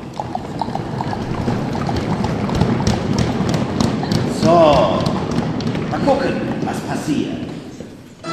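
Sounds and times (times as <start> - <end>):
low rumble of movement: 0.0 - 4.3
several horses' hooves clip-clopping as riders set off: 0.0 - 8.2
speech: 6.1 - 7.5.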